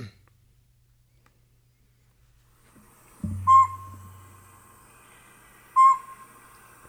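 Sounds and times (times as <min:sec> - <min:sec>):
low droning hum: 0:03.2 - 0:05.1
northern pygmy owl hooting: 0:03.4 - 0:04.5, 0:05.7 - 0:06.6.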